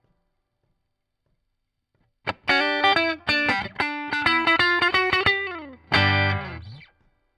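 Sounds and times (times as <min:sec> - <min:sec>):
rock and roll guitar solo: 0:02.3 - 0:07.0.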